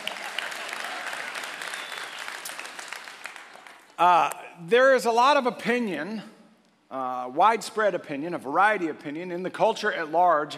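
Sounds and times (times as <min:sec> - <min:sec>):
audience applauding: 0:00.0 - 0:04.0
speech: 0:04.0 - 0:10.5.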